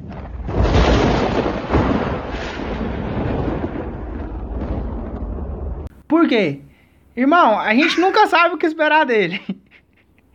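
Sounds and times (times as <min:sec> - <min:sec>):
loud thunder rumbling with a sudden crack: 0:00.0 - 0:05.9
speech: 0:06.2 - 0:09.6.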